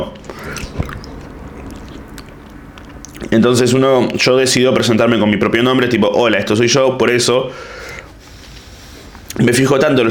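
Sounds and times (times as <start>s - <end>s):
speech: 0.0s - 0.6s, 3.3s - 7.8s, 9.4s - 10.1s
chewing food with wet squishy mouth noises and crunchy bites: 0.2s - 3.4s.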